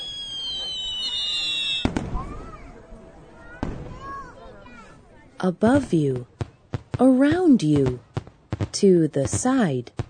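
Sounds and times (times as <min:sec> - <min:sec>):
high whistling streaks: 0:00.0 - 0:01.9
fireworks booming: 0:00.0 - 0:02.6, 0:03.5 - 0:04.2, 0:05.6 - 0:10.0
fireworks crackling: 0:00.0 - 0:02.8, 0:05.7 - 0:10.0
speech: 0:05.4 - 0:06.3, 0:07.0 - 0:08.1, 0:08.7 - 0:10.0.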